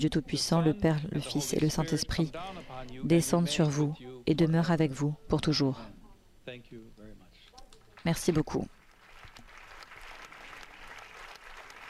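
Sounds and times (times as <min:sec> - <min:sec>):
speech: 0:00.0 - 0:06.9, 0:08.0 - 0:08.8
applause from an assembly in a packed synod hall: 0:08.8 - 0:11.8.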